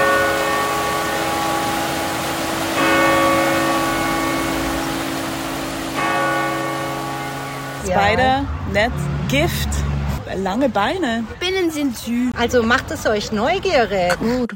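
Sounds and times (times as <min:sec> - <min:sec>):
church bells ringing: 0:00.0 - 0:08.3
speech: 0:07.9 - 0:14.5.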